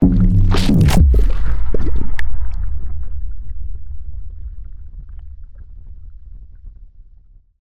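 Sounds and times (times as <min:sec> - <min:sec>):
granular bubbles: 0:00.0 - 0:02.9
sci-fi water hit: 0:00.0 - 0:03.1.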